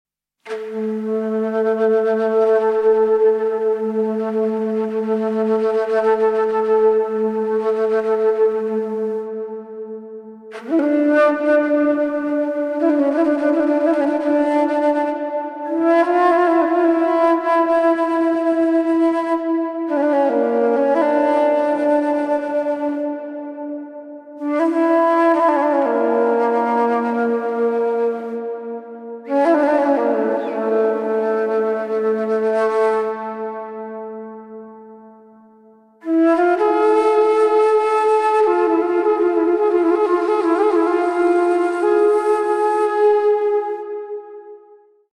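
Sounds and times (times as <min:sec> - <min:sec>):
calm Middle Eastern flute solo: 0:00.4 - 0:45.1.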